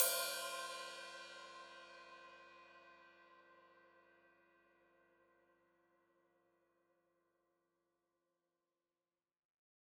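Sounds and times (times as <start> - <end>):
open hi-hat cymbal in stereo: 0.0 - 1.5.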